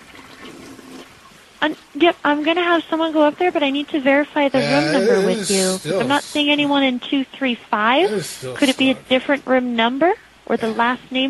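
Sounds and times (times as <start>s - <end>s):
toilet flushing: 0.0s - 1.2s
speech: 1.6s - 11.2s.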